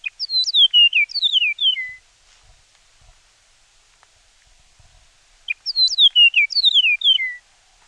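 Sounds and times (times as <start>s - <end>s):
Chihuahuan meadowlark singing descending whistled phrases: 0.0s - 2.0s, 5.4s - 7.4s.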